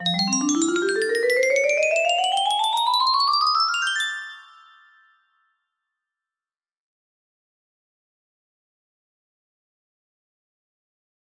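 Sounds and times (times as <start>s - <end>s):
music box melody: 0.0s - 5.1s.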